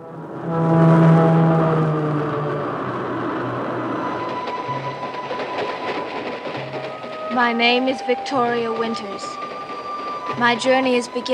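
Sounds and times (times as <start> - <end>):
loud steady train horn blast: 0.0 - 11.3
train rumbling along the rails: 3.4 - 11.3
speech: 7.4 - 9.4, 10.4 - 11.3.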